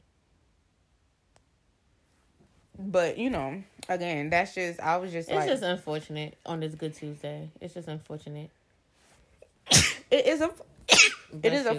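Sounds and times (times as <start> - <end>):
speech: 2.8 - 8.6, 9.7 - 10.7, 11.3 - 11.7
person sneezing loudly: 9.7 - 10.1, 10.9 - 11.4.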